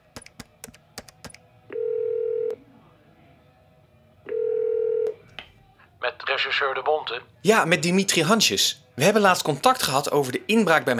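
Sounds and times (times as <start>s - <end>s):
long steady telephone ringing tones: 1.7s - 2.6s, 4.3s - 5.2s
speech: 6.4s - 10.9s.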